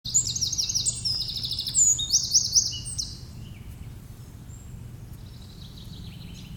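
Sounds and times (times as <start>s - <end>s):
Eurasian wren Troglodytes troglodytes singing: 0.1s - 6.5s
low steady hum: 0.1s - 6.5s.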